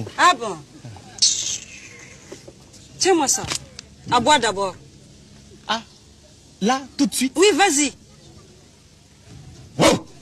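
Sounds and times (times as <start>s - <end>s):
speech: 0.0s - 1.5s, 3.0s - 4.8s, 5.7s - 5.9s, 6.6s - 8.0s
faint hiss: 0.0s - 10.2s
person's voice imitating a dog bark: 9.8s - 10.2s.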